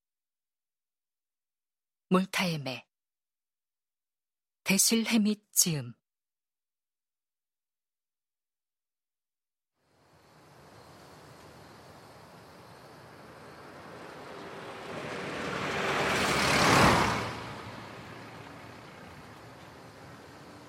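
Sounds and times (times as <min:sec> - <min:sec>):
speech: 0:02.1 - 0:02.9, 0:04.7 - 0:06.0
car rushing past out of a tunnel: 0:09.9 - 0:20.6.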